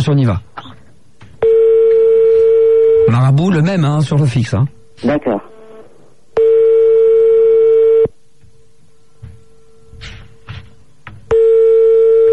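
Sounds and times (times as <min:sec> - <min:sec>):
speech: 0:00.1 - 0:00.6, 0:03.1 - 0:05.5
landline phone ringback tones: 0:01.4 - 0:03.1, 0:06.4 - 0:08.1, 0:11.3 - 0:12.3.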